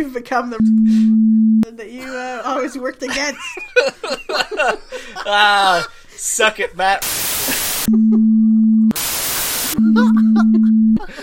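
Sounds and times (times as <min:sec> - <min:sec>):
speech: 0:00.0 - 0:07.2, 0:07.9 - 0:08.5, 0:10.0 - 0:11.2
steady low electronic tone: 0:00.6 - 0:01.6, 0:07.9 - 0:11.0
laughter: 0:03.1 - 0:05.9, 0:09.8 - 0:11.2
loud bursts of harsh white noise hiss: 0:07.0 - 0:07.9, 0:08.9 - 0:09.8.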